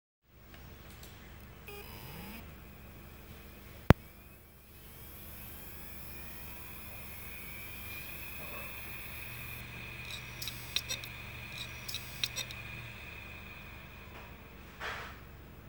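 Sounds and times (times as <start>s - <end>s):
damaged Seagate hard drive sounds: 0.6s - 15.5s.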